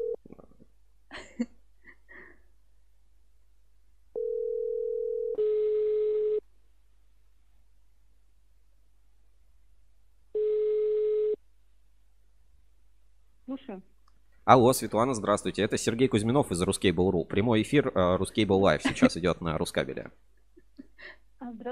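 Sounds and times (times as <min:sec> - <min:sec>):
phone dial tone: 0:04.2 - 0:06.4, 0:10.4 - 0:11.4
speech: 0:13.6 - 0:20.3, 0:21.0 - 0:21.7.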